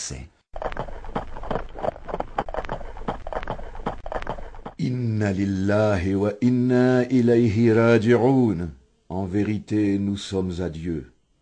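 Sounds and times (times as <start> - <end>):
speech: 0.1 - 0.8, 4.8 - 11.1
troop horses' hooves pounding at a run: 0.6 - 4.8.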